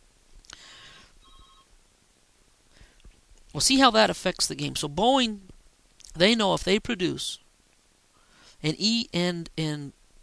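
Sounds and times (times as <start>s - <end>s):
fax machine ringing with electronic trill and warbling tone: 1.2s - 1.7s
speech: 3.6s - 5.5s, 6.2s - 7.4s, 8.6s - 10.0s.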